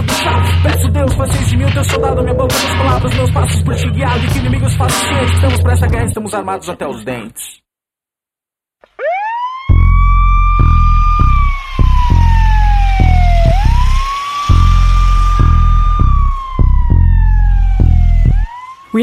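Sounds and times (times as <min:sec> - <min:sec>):
pulsing low bass beat: 0:00.0 - 0:06.2, 0:09.7 - 0:18.5
speech: 0:00.8 - 0:07.6
police siren wailing in rising and falling sweeps: 0:09.0 - 0:19.0.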